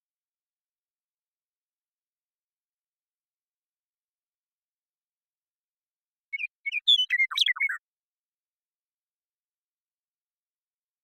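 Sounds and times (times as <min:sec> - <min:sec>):
Western meadowlark Sturnella neglecta song in Washington, United States: 0:06.3 - 0:07.8.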